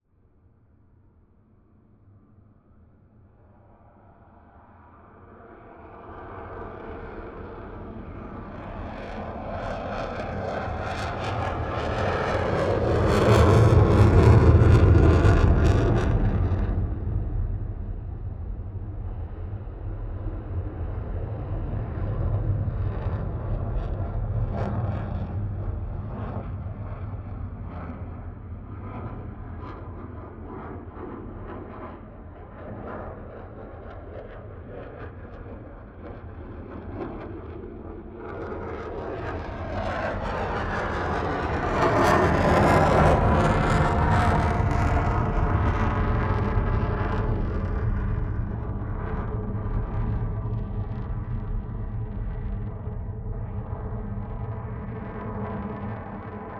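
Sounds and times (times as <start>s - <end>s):
F-16 jet fighter passing by and maneuvering: 5.3s - 56.5s.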